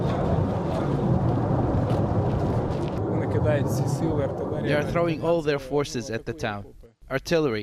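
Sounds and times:
jet fighter engine roaring overhead: 0.0s - 5.2s
speech: 3.4s - 7.6s.

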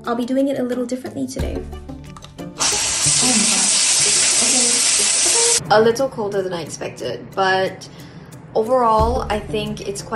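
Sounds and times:
speech: 0.0s - 2.0s, 5.7s - 10.1s
shower water gushing and running: 2.6s - 5.6s.

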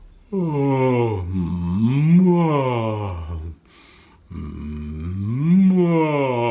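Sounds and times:
person humming a low note while yawning: 0.3s - 3.6s, 4.3s - 6.4s
short breath: 3.6s - 4.4s.

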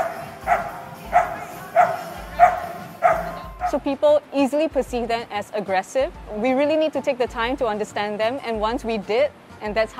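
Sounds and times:
dog barking: 0.0s - 3.8s
speech: 3.7s - 9.9s.

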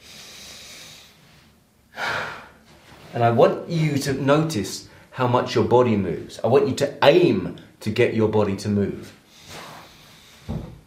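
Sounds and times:
person breathing in and letting go: 0.0s - 2.8s, 9.2s - 10.8s
speech: 3.1s - 9.2s.

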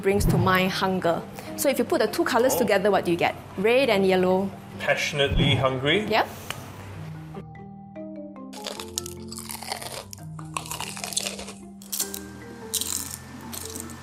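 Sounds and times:
speech: 0.0s - 6.4s
Korean fried chicken being bitten and chewed: 8.6s - 14.0s.

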